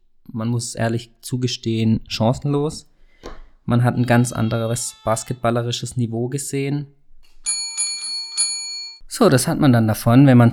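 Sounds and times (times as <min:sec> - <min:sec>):
speech: 0:00.3 - 0:02.9, 0:03.7 - 0:07.0, 0:09.1 - 0:10.5
doorbell ringing with bright metallic chimes: 0:04.0 - 0:05.6, 0:07.4 - 0:09.0.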